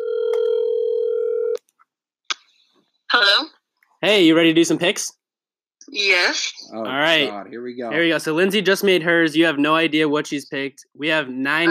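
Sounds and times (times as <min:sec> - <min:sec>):
telephone dial tone on speakerphone: 0:00.0 - 0:01.6
speech: 0:03.2 - 0:05.2, 0:05.9 - 0:11.6.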